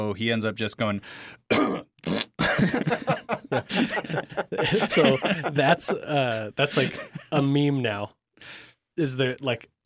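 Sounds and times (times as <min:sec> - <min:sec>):
speech: 0:00.0 - 0:01.8, 0:02.6 - 0:09.8
person vocally imitating a cough covering a fart: 0:01.5 - 0:02.6
laughter: 0:02.4 - 0:07.6.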